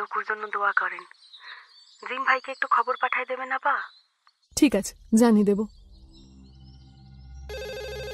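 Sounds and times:
speech: 0.0 - 1.4, 2.0 - 4.0, 4.6 - 5.8
telephone ringing with a bell-like tone: 7.5 - 8.1.

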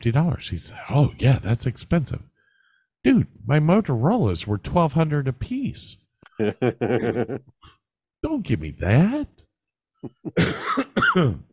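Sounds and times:
speech: 0.0 - 2.3, 3.0 - 9.4, 10.0 - 11.5
laughter: 6.3 - 7.5, 10.0 - 10.4
person coughing with throaty hacks: 10.1 - 11.5.

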